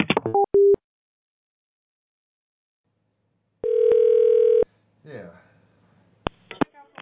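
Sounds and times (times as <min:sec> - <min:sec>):
short electronic telephone beeps: 0:00.4 - 0:00.8, 0:03.6 - 0:04.6
telephone dial tone: 0:03.6 - 0:04.6.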